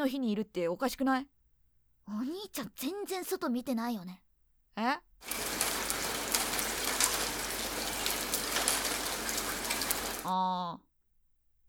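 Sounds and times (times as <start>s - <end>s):
speech: 0.0s - 1.4s, 2.1s - 4.2s, 4.8s - 5.5s, 10.2s - 10.8s
steady rain falling outside: 5.2s - 10.3s.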